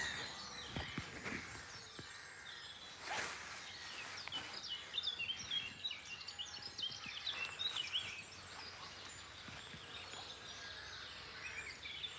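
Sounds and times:
blackcaps singing amid a chorus of other birds: 0:00.0 - 0:12.1
steady outdoor hiss: 0:00.0 - 0:12.1.

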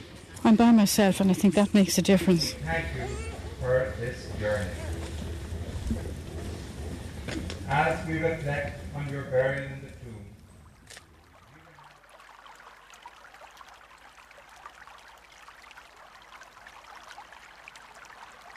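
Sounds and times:
brief low murmur: 0:00.0 - 0:10.7
Gave River in Lourdes flowing: 0:00.0 - 0:18.5
speech: 0:00.4 - 0:04.8, 0:07.7 - 0:09.8.

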